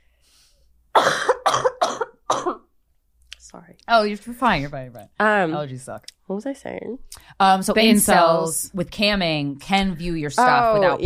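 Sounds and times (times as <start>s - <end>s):
harsh rattly coughing fit: 0.9s - 2.7s
speech: 3.9s - 11.0s.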